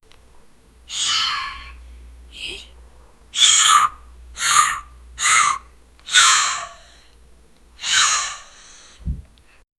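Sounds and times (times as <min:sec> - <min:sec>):
boy fearful vocal: 0:00.9 - 0:02.7, 0:03.4 - 0:07.1, 0:07.8 - 0:08.9.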